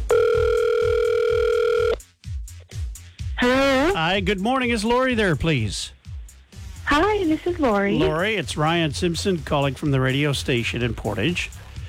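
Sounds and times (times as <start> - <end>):
telephone ringing for an incoming call: 0.0 - 2.0
speech: 4.0 - 6.0, 6.9 - 11.6.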